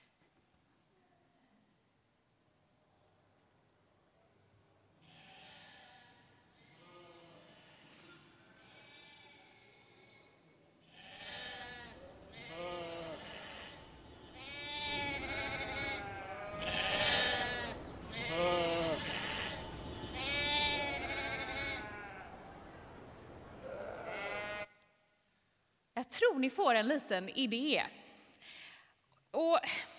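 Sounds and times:
several sheep bleating: 5.0 - 22.5, 23.6 - 24.8
speech: 26.4 - 28.0, 29.5 - 29.9.

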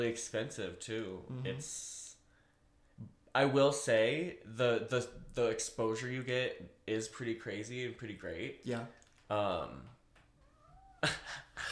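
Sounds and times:
speech: 0.0 - 2.0, 3.0 - 10.0, 11.0 - 11.7
cat meowing loudly: 10.4 - 11.2.

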